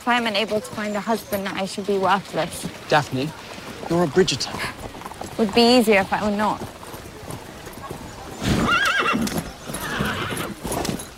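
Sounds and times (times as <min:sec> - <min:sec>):
speech: 0:00.0 - 0:06.7
horse hooves clip-clopping: 0:00.0 - 0:11.1
horse neighing: 0:08.4 - 0:10.6.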